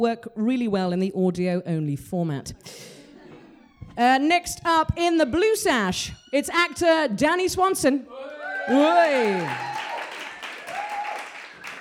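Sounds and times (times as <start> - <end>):
speech: 0.0 - 3.0, 4.0 - 9.7
crowd clapping: 8.2 - 11.7
faint whistles or cheers: 8.2 - 11.7.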